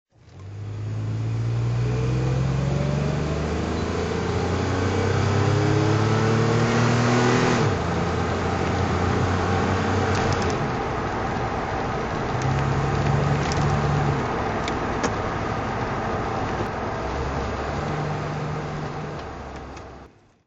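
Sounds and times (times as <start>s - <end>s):
DeLorean driving: 0.2s - 20.4s.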